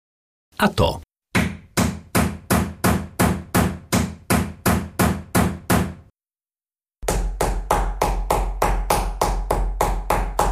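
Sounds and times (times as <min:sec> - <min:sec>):
speech: 0:00.6 - 0:01.1
hammer driving a nail: 0:01.3 - 0:06.1, 0:07.0 - 0:10.5.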